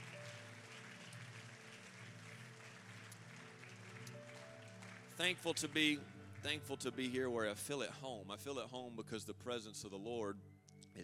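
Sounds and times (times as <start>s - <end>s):
church audience applauding: 0.0s - 7.2s
speech: 5.2s - 11.0s.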